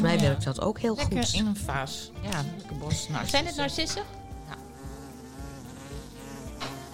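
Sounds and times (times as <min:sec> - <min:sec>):
speech: 0:00.2 - 0:04.2
bee buzzing indoors: 0:01.8 - 0:06.9.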